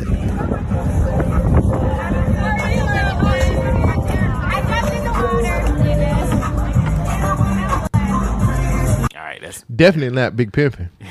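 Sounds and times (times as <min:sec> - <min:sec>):
steady wind buffeting the microphone on open water: 0:00.0 - 0:07.4
rumble of a bigger boat's motion on open water: 0:00.0 - 0:07.8
several people chattering indistinctly aboard a boat: 0:00.0 - 0:09.1
speech: 0:09.8 - 0:11.0.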